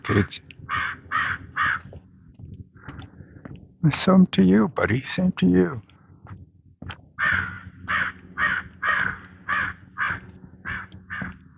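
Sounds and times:
speech: 0.0s - 1.1s, 3.8s - 5.9s
crow cawing: 0.6s - 2.0s, 7.2s - 11.5s.

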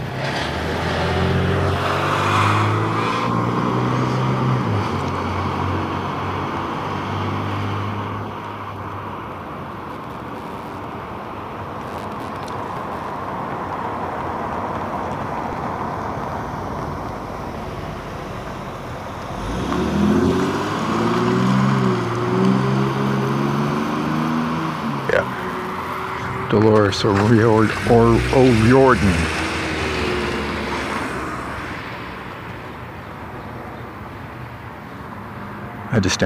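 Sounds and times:
cars and heavier vehicles rumbling past: 0.0s - 36.2s
steady roar of street traffic: 0.0s - 36.2s
loud low engine drone: 17.0s - 32.8s
speech: 26.8s - 29.4s, 36.0s - 36.2s.

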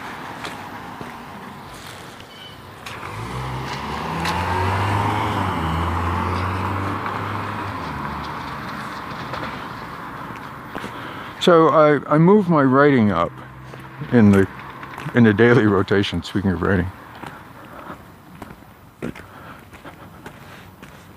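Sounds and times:
car engine and tire noise passing by: 0.0s - 11.3s, 13.0s - 15.7s
outdoor traffic: 0.0s - 21.1s
wind: 0.0s - 21.1s
speech: 11.4s - 13.4s, 14.1s - 17.0s.

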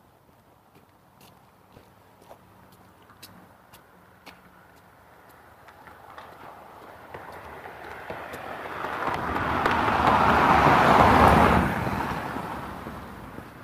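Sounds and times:
cars passing on a road: 0.0s - 13.6s
faint tapping footsteps: 0.3s - 10.2s.

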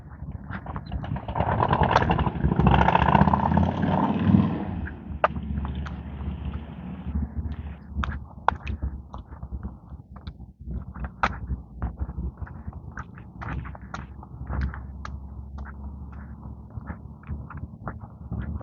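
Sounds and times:
low hum: 0.0s - 18.6s
motorcycle engine passing by: 1.0s - 7.8s.

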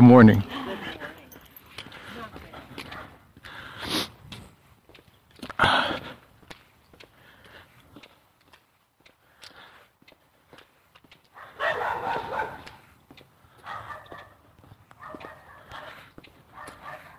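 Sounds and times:
speech: 0.0s - 0.7s
light footsteps: 0.0s - 17.1s
small dogs yapping outdoors: 11.4s - 12.8s, 15.0s - 17.1s.

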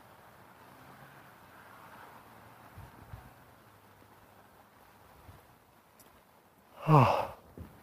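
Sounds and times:
deep voiced yawn: 6.8s - 7.4s.

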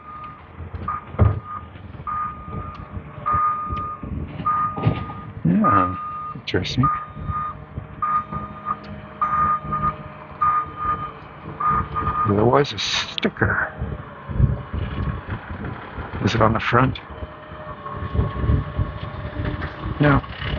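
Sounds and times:
garbage truck reversing alarm beeping: 0.0s - 12.4s
garbage truck engine rumbling: 0.0s - 20.5s
speech: 5.6s - 7.0s, 12.3s - 13.8s, 16.2s - 17.1s, 20.0s - 20.3s.

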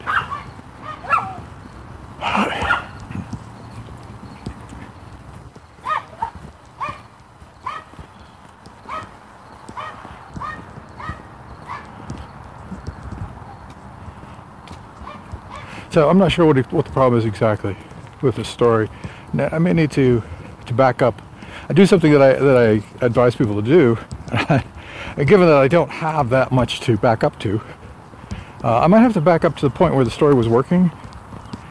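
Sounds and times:
female dog barking: 0.0s - 1.4s, 2.5s - 3.0s, 5.8s - 8.0s, 8.8s - 9.1s, 9.8s - 11.9s, 15.0s - 15.7s
female dog feet tapping and clicking across a hard floor: 2.6s - 24.7s, 28.1s - 31.6s
speech: 15.9s - 27.7s, 28.6s - 31.0s.

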